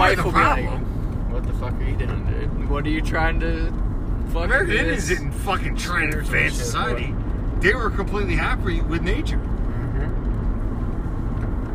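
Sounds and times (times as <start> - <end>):
engine and road noise inside a moving car: 0.0 - 11.7
speech: 0.1 - 9.5.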